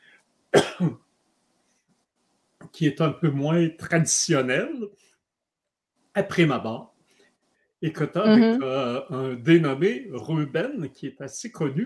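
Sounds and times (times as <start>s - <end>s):
speech: 0.5s - 1.0s, 2.8s - 5.1s, 6.2s - 6.9s, 7.8s - 11.8s
throat clearing during a conversation: 0.6s - 1.0s, 8.0s - 9.4s
laughter: 2.8s - 4.8s, 7.8s - 11.8s.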